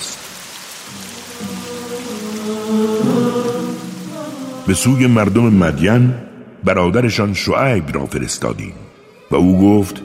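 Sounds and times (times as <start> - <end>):
steady rain falling: 0.0 - 6.1
speech: 4.7 - 10.0.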